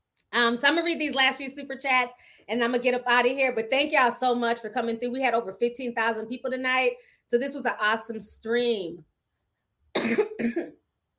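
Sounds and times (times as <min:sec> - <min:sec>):
speech: 0:00.3 - 0:09.1, 0:10.0 - 0:10.8
harsh coughs: 0:09.9 - 0:10.8.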